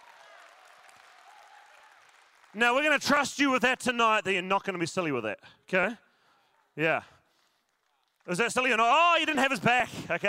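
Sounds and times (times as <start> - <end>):
small group clapping in a church: 0.0 - 3.6, 6.9 - 10.2
speech: 2.5 - 6.0, 6.8 - 7.2, 8.2 - 10.2.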